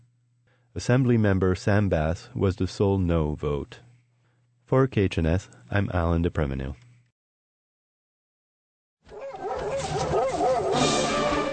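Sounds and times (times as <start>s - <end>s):
speech: 0.8s - 3.8s, 4.7s - 6.8s
sled dogs barking and yipping at the start of a sled dog race in Alaska: 9.1s - 11.5s.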